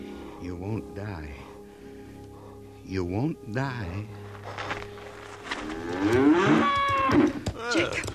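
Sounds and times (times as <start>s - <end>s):
low steady hum: 0.0s - 6.5s
speech: 0.4s - 1.5s, 2.9s - 4.9s, 5.6s - 8.1s
female calf mooing: 5.7s - 7.2s.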